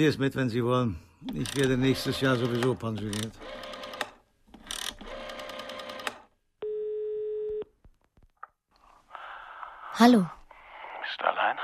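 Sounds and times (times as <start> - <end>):
speech: 0.0 - 3.6, 10.0 - 10.4
telephone dialing clicks: 1.3 - 6.3
telephone dial tone: 1.3 - 7.7.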